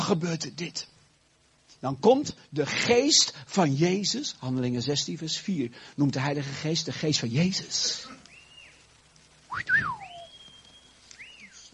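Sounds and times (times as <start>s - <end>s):
faint noise: 0.0s - 11.7s
speech: 0.1s - 0.9s, 1.8s - 8.2s, 9.5s - 10.1s
person whistling sliding notes: 9.5s - 11.7s.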